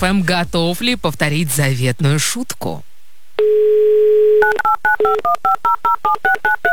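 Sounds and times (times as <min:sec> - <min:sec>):
speech: 0:00.0 - 0:02.9, 0:05.0 - 0:06.7
steady telephone dial tone: 0:03.4 - 0:05.3
dual-pitched telephone keypad DTMF beeps: 0:04.4 - 0:06.7.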